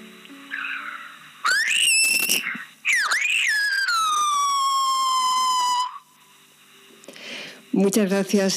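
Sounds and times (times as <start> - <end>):
whistled message in Silbo Gomero: 1.5 - 6.0
speech: 7.8 - 8.5.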